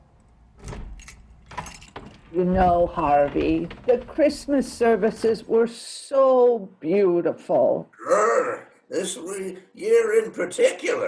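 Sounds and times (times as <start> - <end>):
lock turning as a door is unlocked: 0.2 - 5.5
keys jangling and clinking: 0.6 - 2.3
speech: 2.3 - 11.0.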